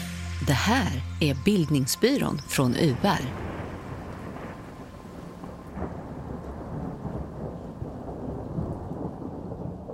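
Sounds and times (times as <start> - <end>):
steady hiss of rain: 0.1 - 9.9
speech: 0.4 - 3.5
deep rolling thunder: 3.2 - 9.9.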